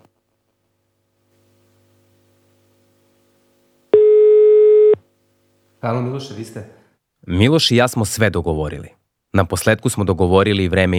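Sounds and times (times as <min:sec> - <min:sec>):
telephone ringback tone while calling someone: 0:04.0 - 0:05.0
speech: 0:05.8 - 0:10.9.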